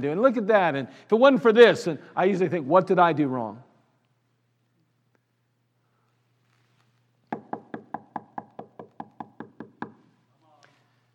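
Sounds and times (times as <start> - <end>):
speech: 0.0 - 3.7
firm knocks on a door: 7.3 - 10.0.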